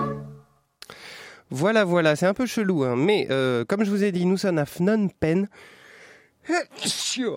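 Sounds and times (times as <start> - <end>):
speech: 1.7 - 5.8, 6.4 - 7.3
person sneezing: 6.7 - 7.3.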